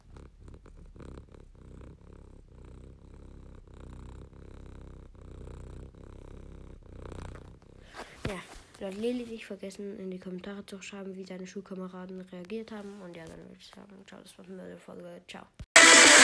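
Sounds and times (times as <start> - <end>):
domestic cat purring: 0.0 - 13.6
rustling scratch: 7.1 - 9.5
speech: 8.3 - 15.6.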